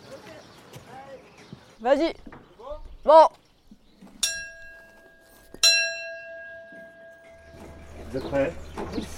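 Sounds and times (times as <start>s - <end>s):
speech: 1.8s - 2.3s, 3.0s - 3.4s, 8.1s - 9.1s
bell struck for audio sync: 4.2s - 8.4s.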